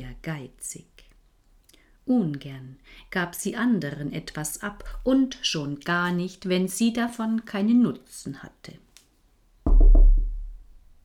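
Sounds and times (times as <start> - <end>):
speech: 0.0 - 1.0, 2.1 - 8.8
knocking on a house door: 9.7 - 10.7.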